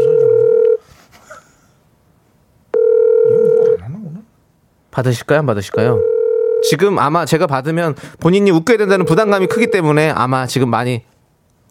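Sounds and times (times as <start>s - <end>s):
phone ringback tone over speakerphone: 0.0s - 0.8s, 2.7s - 3.8s, 5.8s - 6.8s, 9.0s - 9.9s
speech: 5.0s - 11.1s.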